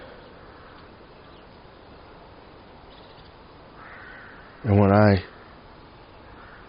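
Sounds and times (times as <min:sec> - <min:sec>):
crow-like caws: 0:00.0 - 0:01.0, 0:03.7 - 0:06.6
birds calling outdoors: 0:00.0 - 0:06.6
steady hiss of noise: 0:00.0 - 0:06.6
speech: 0:04.6 - 0:05.3.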